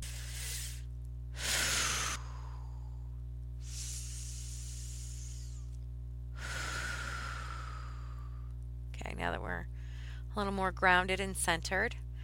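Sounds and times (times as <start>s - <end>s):
deep calming breaths: 0.0s - 5.7s, 6.3s - 8.6s, 9.7s - 10.3s
constant low hum: 0.0s - 12.2s
speech: 9.2s - 9.8s, 10.4s - 12.0s.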